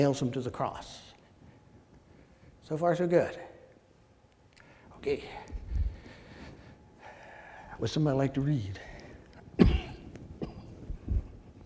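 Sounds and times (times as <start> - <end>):
speech: 0.0 - 1.1, 2.7 - 3.5, 5.0 - 5.5, 7.8 - 8.9
person coughing: 9.6 - 10.8.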